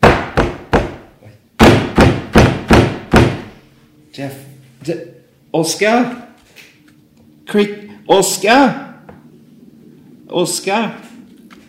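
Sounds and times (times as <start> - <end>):
heavy fists banging on a door: 0.0 - 3.5
speech: 4.2 - 6.7, 7.5 - 8.9, 10.3 - 11.1.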